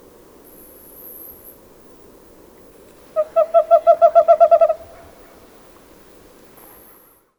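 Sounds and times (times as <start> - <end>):
bird hooting: 3.0 - 5.7.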